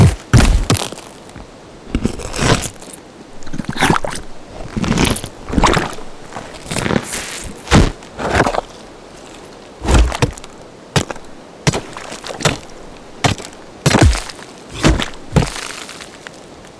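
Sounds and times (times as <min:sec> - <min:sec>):
shovels and picks digging on stone and wood in underground mines: 0:00.0 - 0:01.4, 0:02.0 - 0:04.2, 0:06.6 - 0:16.3.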